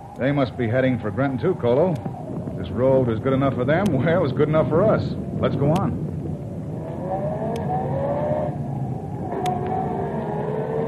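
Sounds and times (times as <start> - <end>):
speech: 0.2 - 6.1
car engine revving on a road: 6.8 - 10.8.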